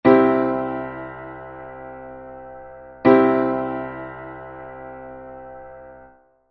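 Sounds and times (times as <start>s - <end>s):
C major chord: 0.0s - 6.2s.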